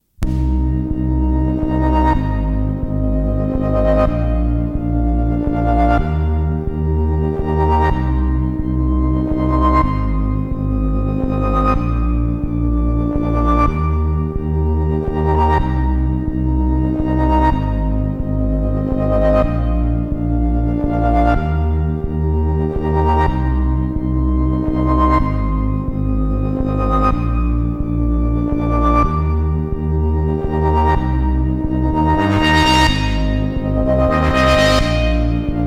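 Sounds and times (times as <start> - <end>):
ambient C64 SID chiptune music with tape and reverb: 0.2 - 35.6.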